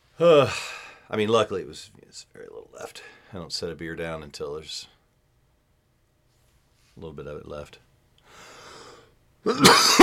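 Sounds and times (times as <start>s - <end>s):
speech: 0.2s - 5.0s, 7.0s - 7.9s, 9.4s - 10.0s
person coughing into the microphone: 9.5s - 10.0s.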